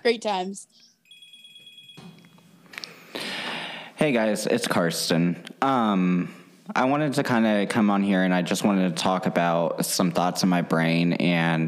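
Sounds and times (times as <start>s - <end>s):
speech: 0.0s - 0.9s, 4.0s - 11.6s
telephone ringing with high electronic tone: 1.0s - 2.5s.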